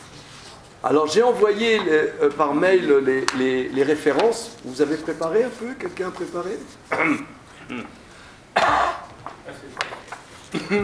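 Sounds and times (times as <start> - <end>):
speech: 0.8 - 8.0, 10.5 - 10.8
sharp loud sudden cough: 6.9 - 8.0, 8.6 - 9.1, 10.5 - 10.8.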